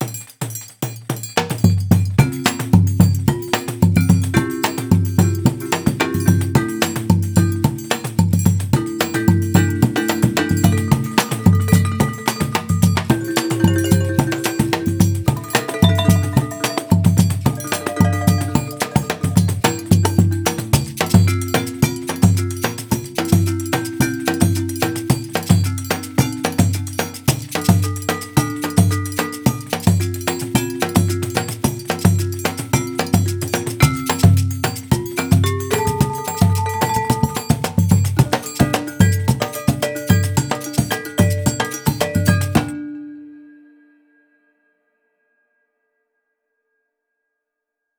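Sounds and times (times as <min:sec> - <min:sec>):
Brazilian baiao zabumba drum percussion: 0:00.0 - 0:42.9.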